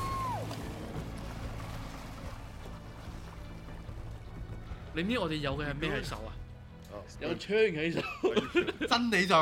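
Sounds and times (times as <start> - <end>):
high tone sliding downward: 0.0 - 0.6
speedboat engine in a video game: 0.0 - 4.9
watery wash: 0.0 - 5.8
speech: 5.0 - 6.4, 7.0 - 9.3
laughter: 7.8 - 9.2.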